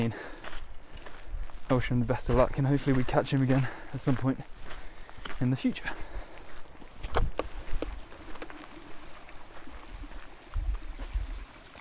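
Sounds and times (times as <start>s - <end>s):
speech: 0.0s - 0.4s, 1.7s - 4.6s, 5.4s - 6.1s
low bumps: 0.0s - 11.4s
flowing stream trickling: 4.6s - 11.7s.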